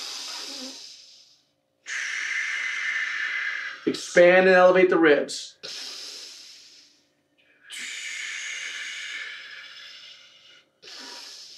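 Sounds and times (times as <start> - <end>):
deep breaths during a bodyweight exercise routine: 0.0 - 4.2, 5.6 - 11.5
speech: 3.9 - 5.6.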